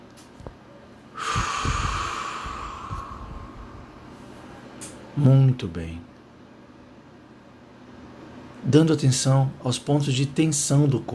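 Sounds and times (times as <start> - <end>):
slow breath in and out during a guided relaxation exercise: 1.2 - 4.3
speech: 5.2 - 6.1, 8.7 - 11.1.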